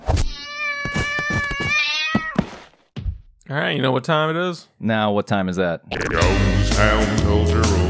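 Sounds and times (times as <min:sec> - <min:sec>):
cat meowing: 0:00.3 - 0:02.4
speech: 0:03.5 - 0:07.7.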